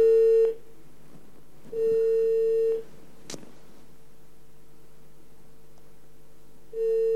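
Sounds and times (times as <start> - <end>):
telephone ringback tone on a call: 0.0 - 0.6, 1.7 - 2.8, 6.7 - 7.1.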